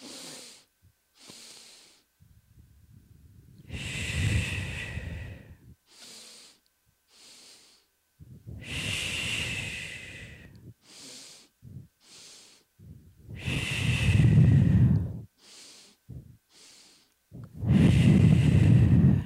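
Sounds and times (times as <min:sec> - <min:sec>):
deep breathing with sniffing inhales and rushing exhales: 0:00.0 - 0:19.2.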